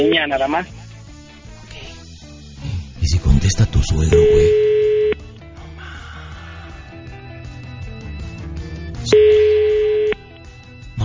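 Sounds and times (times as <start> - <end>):
speech: 0.0 - 0.8, 3.1 - 4.6
music: 0.0 - 11.0
telephone call tone on a call to a home number: 4.2 - 5.3, 9.1 - 10.3.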